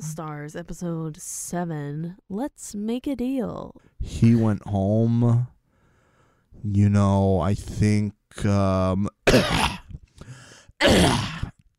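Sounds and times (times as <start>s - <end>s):
speech: 0.2s - 5.6s, 6.6s - 9.8s, 10.8s - 11.5s
soft raspy breath or throat noise: 5.7s - 6.5s, 10.0s - 10.8s
person coughing harshly: 9.3s - 10.0s, 10.8s - 11.6s.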